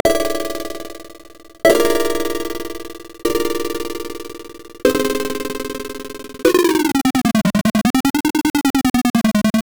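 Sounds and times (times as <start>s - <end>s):
short snappy chiptune: 0.0s - 9.7s.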